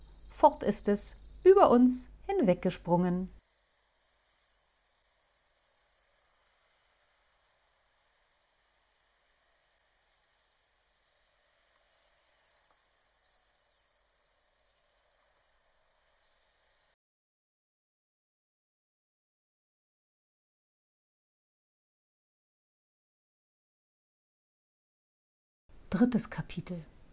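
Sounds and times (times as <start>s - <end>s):
cricket chirping in a shrill trill: 0.0s - 1.7s, 2.8s - 6.4s, 10.9s - 16.0s
speech: 0.4s - 3.4s, 25.9s - 26.9s.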